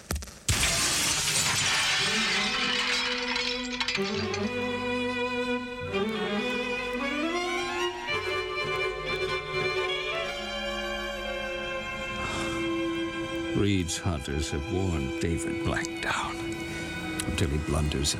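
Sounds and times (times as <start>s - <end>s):
man's body crashing through double glass doors of an alley exit: 0.5s - 4.5s
broken glass spilling: 0.5s - 4.6s
speech: 4.0s - 4.7s, 13.6s - 16.6s, 17.3s - 18.1s
dramatic music with sustained tones: 5.0s - 18.1s.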